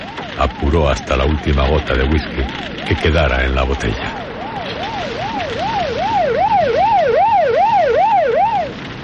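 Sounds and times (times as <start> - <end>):
police patrol car siren wailing: 0.0 - 9.0
road noise rumble: 0.0 - 9.0
speech: 0.4 - 4.3.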